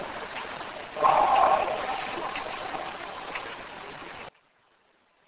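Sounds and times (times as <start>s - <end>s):
amplified scary noise: 0.9s - 4.3s.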